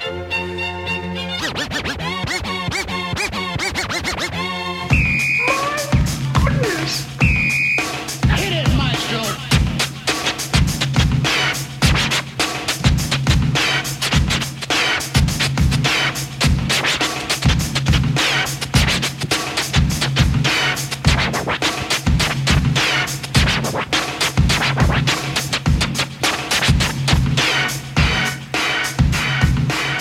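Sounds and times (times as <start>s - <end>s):
industrial hip-hop music sample: 1.2s - 29.9s.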